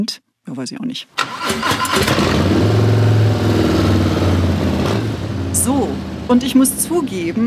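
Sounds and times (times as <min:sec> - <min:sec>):
speech: 0:00.0 - 0:03.1, 0:05.6 - 0:07.4
Harley-Davidson motorcycle engine cranking and starting: 0:01.2 - 0:07.4.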